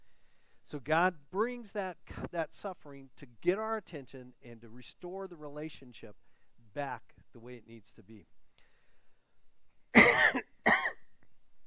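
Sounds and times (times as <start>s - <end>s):
speech: 0.7s - 6.2s, 6.8s - 8.4s
person coughing: 10.0s - 11.1s.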